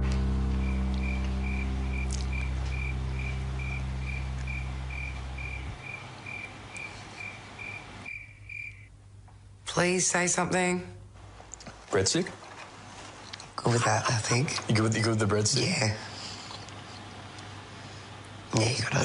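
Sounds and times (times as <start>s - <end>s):
low hum: 0.0s - 19.0s
crickets chirping: 0.1s - 9.0s
speech: 9.8s - 11.0s, 11.9s - 12.4s, 13.6s - 16.1s, 18.6s - 19.0s.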